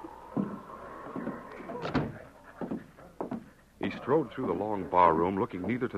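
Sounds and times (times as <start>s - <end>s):
office door opening with soft clunks and rattles: 1.7s - 2.3s
speech: 4.0s - 5.9s.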